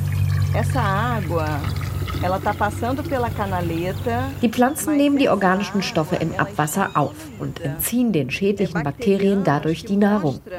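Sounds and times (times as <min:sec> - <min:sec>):
water pouring and splashing while a water sample is taken: 0:00.0 - 0:04.4
low continuous hum: 0:00.0 - 0:10.5
speech: 0:00.6 - 0:10.5.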